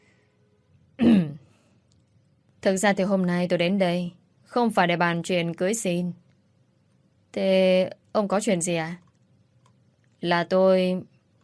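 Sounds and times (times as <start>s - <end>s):
man clearing his throat: 1.0s - 1.4s
speech: 2.6s - 6.2s, 7.3s - 9.0s, 10.2s - 11.1s.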